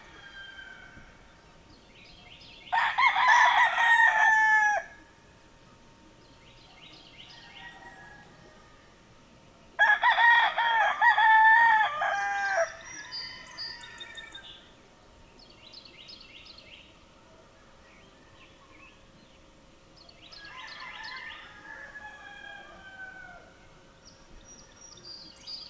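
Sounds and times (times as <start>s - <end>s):
rooster crowing: 0.0s - 1.1s, 2.7s - 5.0s, 7.2s - 8.9s, 9.8s - 14.5s, 20.4s - 23.6s.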